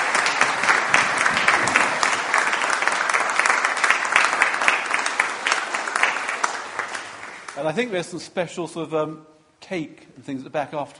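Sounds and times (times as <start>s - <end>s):
audience applauding: 0.0s - 7.9s
speech: 7.6s - 10.9s.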